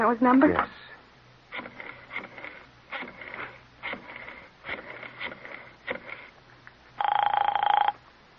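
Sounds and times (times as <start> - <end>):
speech: 0.0 - 0.8
telephone ringing while a call waits for an answer: 7.0 - 8.0.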